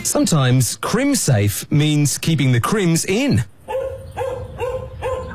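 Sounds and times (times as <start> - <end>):
speech: 0.2 - 3.6
dogs barking: 3.6 - 5.3.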